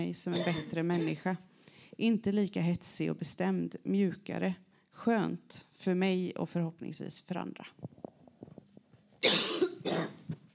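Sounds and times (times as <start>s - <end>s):
speech: 0.0s - 8.0s
loud harsh coughs: 0.3s - 1.2s, 9.2s - 10.2s.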